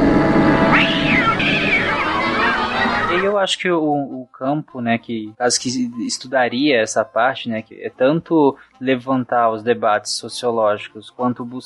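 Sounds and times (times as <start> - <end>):
cat meowing: 0.6 - 3.2
speech: 3.4 - 11.6.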